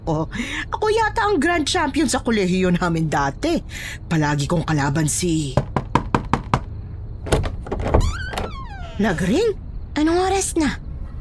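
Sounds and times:
speech: 0:00.0 - 0:05.6, 0:09.0 - 0:10.8
knocking on a door: 0:05.5 - 0:08.5
short squeaky tonal sound: 0:08.0 - 0:09.1.

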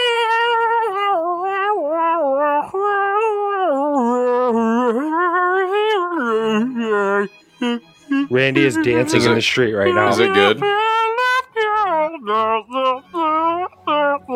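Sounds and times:
harmonica playing a short wavering tune: 0:00.0 - 0:14.3
speech: 0:07.6 - 0:10.8.

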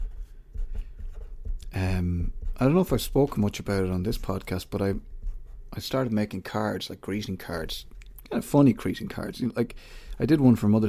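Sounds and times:
pen writing on a piece of paper: 0:00.0 - 0:05.7
speech: 0:01.8 - 0:05.1, 0:05.7 - 0:10.8.

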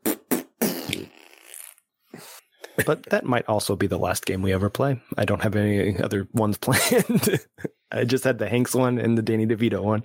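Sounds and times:
fart: 0:00.0 - 0:02.4
speech: 0:02.8 - 0:10.0.

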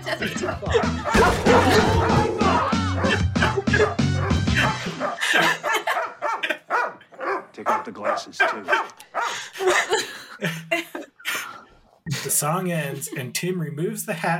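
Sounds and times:
people laughing: 0:00.0 - 0:06.9, 0:07.6 - 0:11.4, 0:12.1 - 0:13.5
speech: 0:00.1 - 0:02.2, 0:12.4 - 0:14.3
dog barking ferociously: 0:01.0 - 0:05.2, 0:05.8 - 0:09.4
several people yelling: 0:01.1 - 0:04.0.

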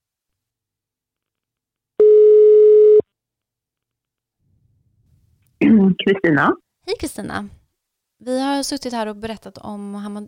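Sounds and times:
telephone ringback tone while calling someone: 0:02.0 - 0:03.0
speech: 0:06.1 - 0:07.6, 0:08.2 - 0:10.2.

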